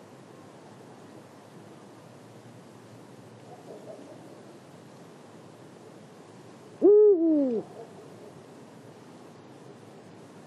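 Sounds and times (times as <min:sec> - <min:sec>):
quiet background hiss: 0:00.0 - 0:10.4
Eurasian eagle-owl Bubo bubo deep hoot at Marianka Slovakia: 0:06.8 - 0:07.9.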